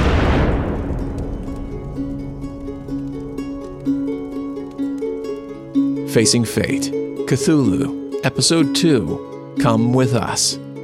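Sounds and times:
loud distant explosion: 0.0 - 4.8
speech: 6.1 - 10.7.

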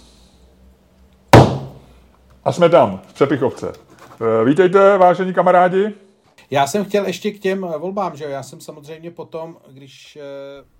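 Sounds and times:
door slamming shut: 1.4 - 1.8
speech: 2.4 - 10.7.

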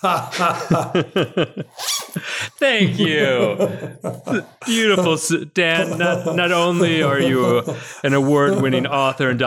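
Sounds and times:
laughter: 0.0 - 9.1
speech: 0.0 - 9.4
voice imitating a zipper with short buzzy vocal bursts: 1.7 - 2.3.

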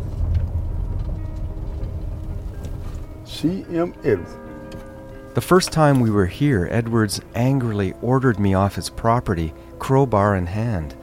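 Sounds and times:
vehicle engine rumbling as it parks by a mailbox: 0.0 - 9.7
vehicle road noise: 0.0 - 11.0
speech: 3.4 - 4.4, 5.4 - 11.0.

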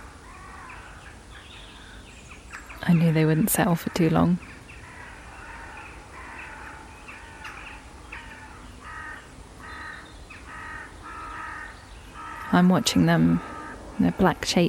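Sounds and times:
crowd of crows cawing while settling to roost: 0.0 - 1.1, 3.8 - 14.4
constant rushing noise: 0.0 - 14.6
speech: 2.8 - 4.5, 12.6 - 14.6.

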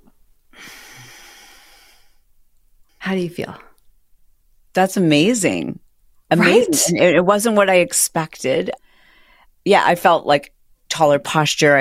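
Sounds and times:
deep breath released as a long airy exhale: 0.6 - 2.2
speech: 3.1 - 3.7, 4.8 - 8.8, 9.6 - 11.7.

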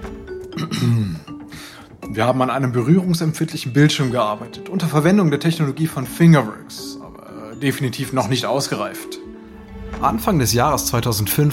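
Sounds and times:
man clearing his throat: 0.6 - 1.4
speech: 0.8 - 1.3, 2.2 - 6.9, 7.6 - 9.3, 10.0 - 11.5.

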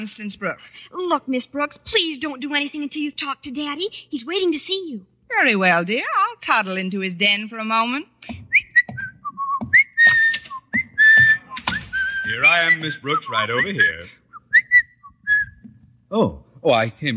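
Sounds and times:
speech: 0.0 - 8.4, 12.4 - 14.2, 16.1 - 17.1
soft low thumps: 8.2 - 12.4, 14.6 - 16.0
person whistling a lively tune: 8.5 - 15.6.

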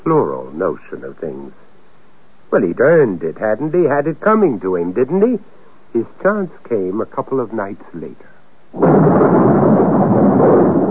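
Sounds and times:
speech: 0.0 - 1.7, 2.5 - 9.6
thunder rumbling during a storm: 8.8 - 10.9.

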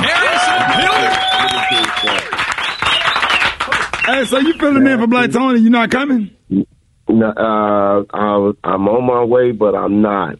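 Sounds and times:
crowd clapping: 0.0 - 4.8
speech: 4.2 - 10.3.

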